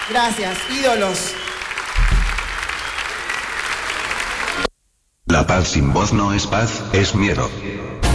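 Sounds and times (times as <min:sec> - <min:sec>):
audience applause: 0:00.0 - 0:04.7
speech: 0:00.1 - 0:01.4, 0:05.3 - 0:08.0
low thump: 0:02.0 - 0:02.6.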